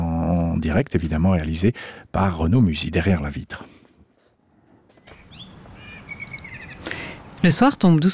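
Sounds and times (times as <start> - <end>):
speech: 0.6 - 3.8, 7.4 - 8.1
blackbird singing: 5.0 - 7.1.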